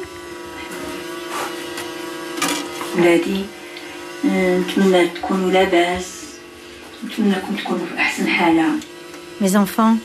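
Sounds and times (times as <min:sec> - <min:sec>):
electric fan droning: 0:00.0 - 0:10.0
speech: 0:03.0 - 0:03.6, 0:04.2 - 0:06.1, 0:07.0 - 0:10.0.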